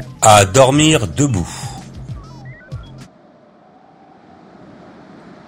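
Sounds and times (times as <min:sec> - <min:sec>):
wind: 0:00.1 - 0:05.4
speech: 0:00.3 - 0:01.7
ocean waves: 0:03.1 - 0:05.4.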